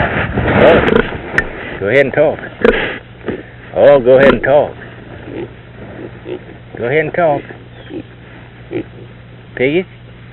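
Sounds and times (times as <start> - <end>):
steady low hum: 0.0 - 10.3
pig grunting and oinking: 0.6 - 1.2, 2.5 - 3.6, 5.1 - 9.2
speech: 1.9 - 3.0, 3.8 - 4.8, 6.8 - 8.0, 8.7 - 9.0, 9.6 - 10.0.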